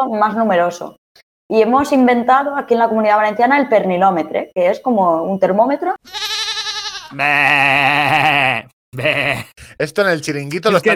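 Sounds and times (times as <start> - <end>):
speech: 0.0 - 6.2, 7.1 - 10.9
goat in heat bleating: 6.0 - 9.6.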